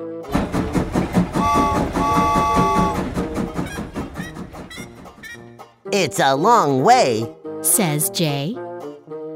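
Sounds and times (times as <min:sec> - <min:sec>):
train clickety-clack on rails: 0:00.3 - 0:05.5
brief whistle-like tone: 0:01.4 - 0:03.0
speech: 0:05.9 - 0:08.6.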